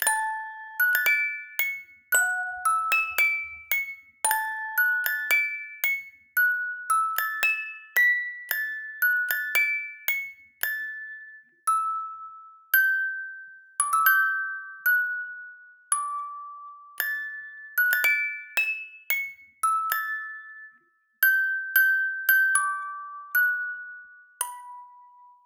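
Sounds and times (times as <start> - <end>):
music box melody: 0.0 - 25.4.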